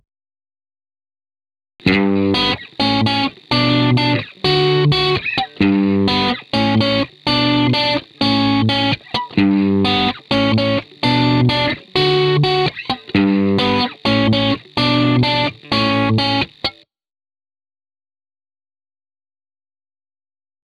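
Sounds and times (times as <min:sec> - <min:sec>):
crunchy guitar in G: 0:01.8 - 0:16.8.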